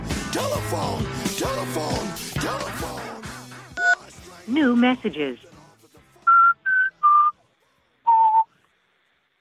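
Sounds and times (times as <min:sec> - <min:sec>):
speech: 0:00.3 - 0:03.1, 0:04.5 - 0:05.5
analog synthesizer playing a whistle-like melody in a pop song: 0:06.2 - 0:07.4, 0:08.1 - 0:08.5.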